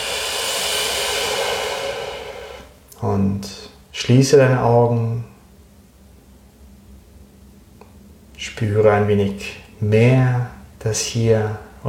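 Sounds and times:
long deep exhalation during a guided breathing exercise: 0.0s - 2.8s
speech: 3.0s - 5.3s, 8.6s - 11.8s.

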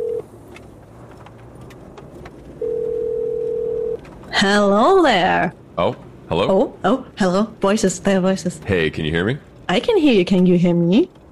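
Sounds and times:
ringback tone from an outgoing telephone call: 0.0s - 0.2s, 2.6s - 4.0s
speech: 4.4s - 11.2s.

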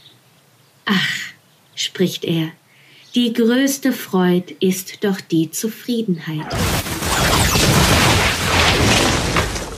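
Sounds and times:
speech: 0.9s - 1.2s, 1.9s - 7.3s
powder-filled tobacco pipe exploding with crackling roar: 6.4s - 9.7s.

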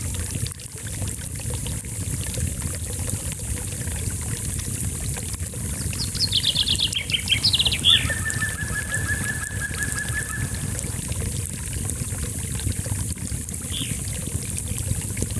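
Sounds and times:
small brook trickling and murmuring: 0.0s - 15.3s
bird singing a descending trill: 5.8s - 10.9s, 13.7s - 14.0s.

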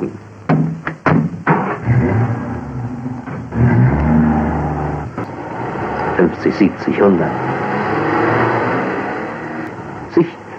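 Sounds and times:
sharp clicks or thumps: 0.5s - 5.4s
new Opel Kapitän car engine revving and accelerating: 1.4s - 10.5s
speech: 6.2s - 7.5s, 10.2s - 10.4s.

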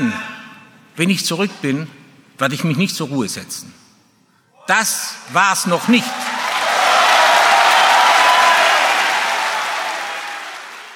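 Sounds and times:
speech: 1.0s - 3.8s, 4.7s - 6.3s
standing ovation from a large crowd of football fans: 5.7s - 10.9s.

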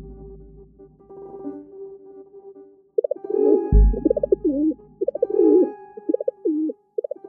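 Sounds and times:
feral pigeon cooing: 3.0s - 3.2s, 3.9s - 7.2s
deeper thumping notes: 3.8s - 5.3s.

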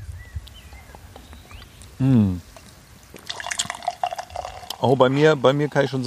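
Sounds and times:
speech: 2.0s - 2.5s, 4.8s - 6.0s
person gulping beer from the bottle: 2.0s - 4.8s
beer gurgling and sloshing inside a glass bottle: 3.2s - 6.0s.

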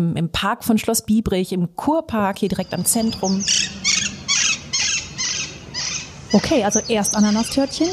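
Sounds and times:
speech: 0.0s - 4.1s, 6.3s - 7.9s
faint low rumble of outdoor noise in a city park: 0.0s - 7.9s
green parakeets screeching in a city park: 2.6s - 7.9s.

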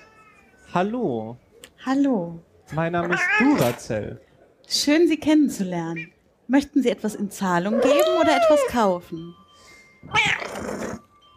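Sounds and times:
speech: 0.7s - 9.4s, 10.0s - 10.3s
cat meowing on a pawnshop counter: 3.0s - 3.8s, 7.7s - 8.8s, 10.1s - 11.0s.

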